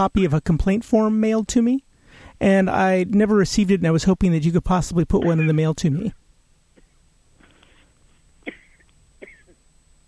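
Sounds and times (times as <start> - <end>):
speech: 0.0 - 6.2
breath catch: 6.8 - 8.0
person coughing over a phone line: 8.4 - 9.6.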